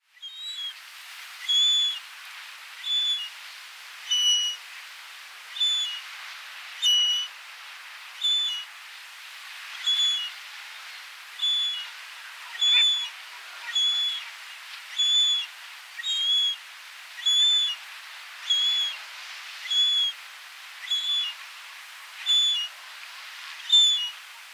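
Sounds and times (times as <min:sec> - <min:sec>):
young yellow-legged gull Larus michahellis calling: 0:00.2 - 0:00.8, 0:01.4 - 0:02.0, 0:02.8 - 0:03.3, 0:04.1 - 0:04.6, 0:05.5 - 0:06.1, 0:06.8 - 0:07.4, 0:08.2 - 0:08.7, 0:09.8 - 0:10.4, 0:11.4 - 0:14.3, 0:14.9 - 0:16.6, 0:17.2 - 0:17.8, 0:18.4 - 0:19.0, 0:19.6 - 0:20.2, 0:20.8 - 0:21.4, 0:22.2 - 0:22.7, 0:23.6 - 0:24.2.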